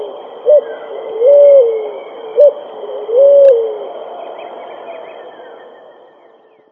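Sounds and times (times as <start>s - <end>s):
pigeon cooing: 0.0s - 4.0s.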